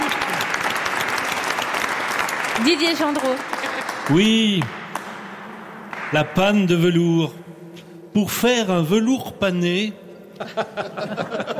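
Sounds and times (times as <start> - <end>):
audience applauding a guest: 0.0 - 6.6
speech: 2.6 - 4.8, 6.1 - 7.4, 8.2 - 11.5
laughter: 3.5 - 4.0, 10.2 - 11.5.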